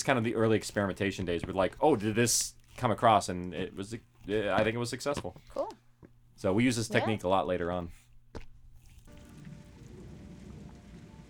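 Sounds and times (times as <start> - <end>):
speech: 0.0 - 5.6, 6.4 - 8.4
steady rain pouring down: 9.8 - 11.2.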